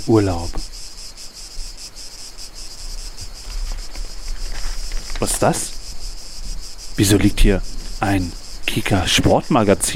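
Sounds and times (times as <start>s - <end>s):
speech: 0.0s - 0.7s, 5.2s - 5.8s, 7.0s - 9.9s
chorus of cicadas shrilling outdoors: 0.0s - 9.9s
low rumble of wind: 0.0s - 9.9s.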